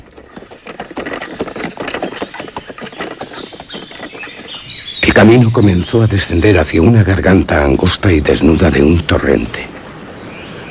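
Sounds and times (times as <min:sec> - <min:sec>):
mule hooves clip-clopping on a road: 0:00.0 - 0:05.8
speech: 0:05.2 - 0:09.7.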